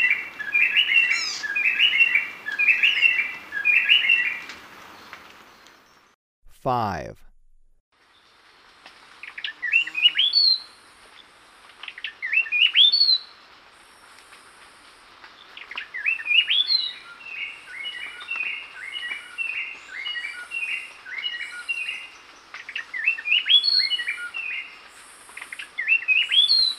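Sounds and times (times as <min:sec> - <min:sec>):
Gray-breasted wood-wren singing whistled phrases in lower subtropical zone Ecuador: 0:00.0 - 0:04.4, 0:09.6 - 0:10.7, 0:12.2 - 0:13.3, 0:15.9 - 0:22.1, 0:23.0 - 0:24.7, 0:25.8 - 0:26.7
speech: 0:06.6 - 0:07.3.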